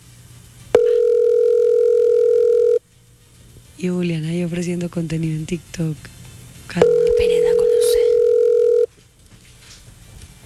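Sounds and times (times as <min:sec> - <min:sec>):
electronic telephone tone on a wrong-number call: 0:00.7 - 0:02.8, 0:06.8 - 0:08.9
speech: 0:03.8 - 0:06.8.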